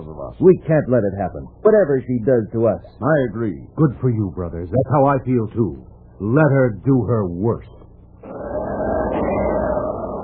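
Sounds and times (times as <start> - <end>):
speech: 0.2 - 7.8
howling wind: 8.2 - 10.2.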